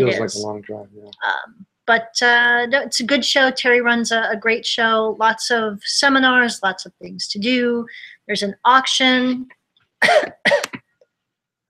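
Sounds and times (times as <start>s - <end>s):
speech: 0.0s - 10.8s
person coughing: 10.0s - 10.8s.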